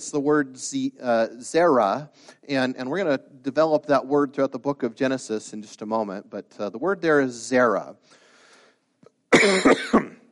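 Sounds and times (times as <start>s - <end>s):
speech: 0.0s - 8.2s, 9.3s - 10.1s
person coughing: 9.3s - 10.2s.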